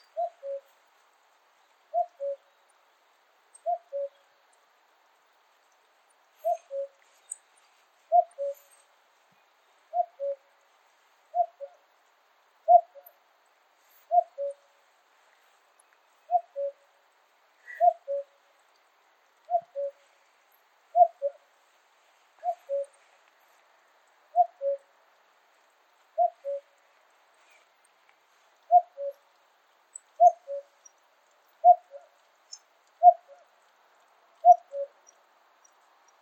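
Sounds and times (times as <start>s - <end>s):
Cuculus canorus calling in Pallars Sobirà: 0.0s - 0.8s, 1.8s - 2.7s, 3.5s - 4.3s, 6.3s - 8.9s, 9.9s - 10.6s, 11.3s - 11.9s, 12.6s - 13.2s, 13.8s - 14.8s, 15.8s - 16.9s, 17.6s - 20.2s, 20.9s - 21.5s, 22.4s - 23.6s, 24.3s - 24.9s, 26.1s - 26.8s, 28.6s - 29.4s, 30.0s - 33.6s, 34.4s - 35.2s.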